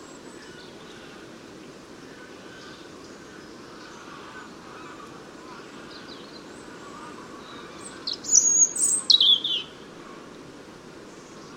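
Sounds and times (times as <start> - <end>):
faint background hiss: 0.0 - 11.5
European Robin song phrase: 7.5 - 9.8.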